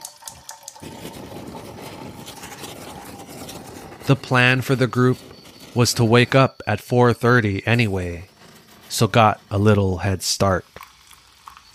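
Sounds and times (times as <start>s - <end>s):
water running into a pot for coffee: 0.0s - 3.3s, 8.8s - 11.7s
speech: 4.1s - 8.3s, 8.9s - 10.8s.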